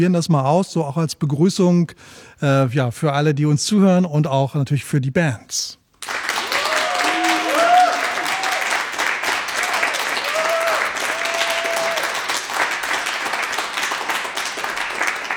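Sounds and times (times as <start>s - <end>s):
speech: 0.0s - 6.2s
studio audience applause: 6.0s - 15.3s
studio audience whoops and cheers: 6.3s - 12.4s.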